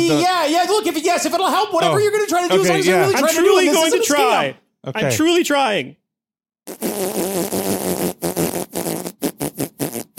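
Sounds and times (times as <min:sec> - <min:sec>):
speech: 0:00.0 - 0:06.0, 0:06.7 - 0:08.0
loud buzzy fart: 0:06.7 - 0:10.1.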